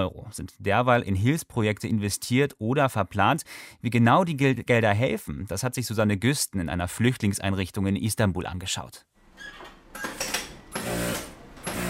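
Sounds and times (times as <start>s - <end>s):
speech: 0.0s - 10.1s
sewing machines rattling: 10.1s - 11.8s.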